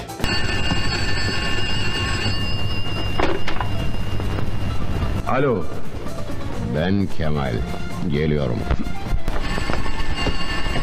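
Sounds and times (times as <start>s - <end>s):
telephone ringing with a shrill electronic tone: 0.0s - 6.6s, 9.1s - 10.8s
speech: 5.3s - 5.9s, 6.8s - 9.0s.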